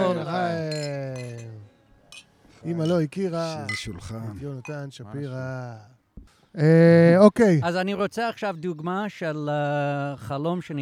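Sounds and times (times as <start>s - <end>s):
beer glasses clinking in a toast: 0.0s - 4.9s
speech: 2.6s - 6.0s, 6.6s - 10.7s.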